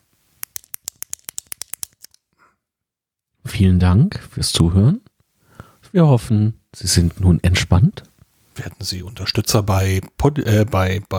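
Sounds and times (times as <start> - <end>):
ballpoint pen clicking: 0.4 - 2.2
speech: 3.5 - 5.1, 5.9 - 11.1.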